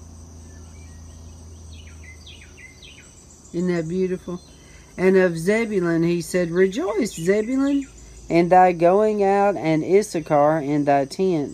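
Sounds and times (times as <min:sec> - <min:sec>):
low hum: 0:00.0 - 0:10.8
bird singing outdoors: 0:00.0 - 0:11.5
faint insect-like buzz: 0:00.0 - 0:11.5
speech: 0:03.5 - 0:11.5.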